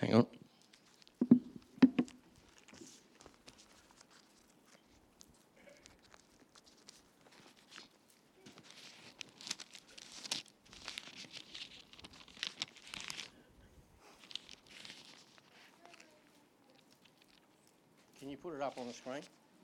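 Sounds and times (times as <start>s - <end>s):
speech: 0.1s - 0.4s, 18.7s - 19.4s
paper rustling and crinkling as Bible pages are turned: 0.5s - 1.3s, 2.2s - 19.6s.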